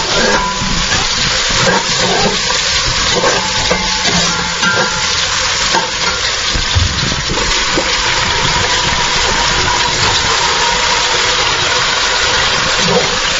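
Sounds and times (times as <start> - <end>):
meat, carrot and onion frying in a cauldron: 0.0 - 13.3.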